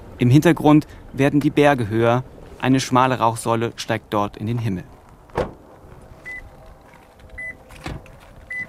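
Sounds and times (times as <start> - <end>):
speech: 0.2 - 5.0
car stopping: 2.4 - 8.6
car door-open warning chime beeping: 6.3 - 6.5, 7.4 - 8.6.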